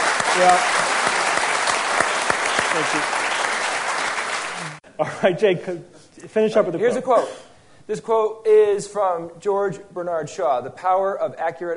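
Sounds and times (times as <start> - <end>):
audience applause: 0.0 - 4.8
speech: 0.4 - 0.8, 2.8 - 3.2, 4.6 - 11.7.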